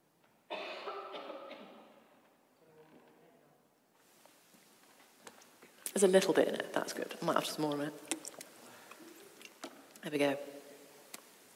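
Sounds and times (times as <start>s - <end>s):
person coughing: 0.5s - 2.0s
speech: 6.0s - 8.2s, 10.1s - 10.6s.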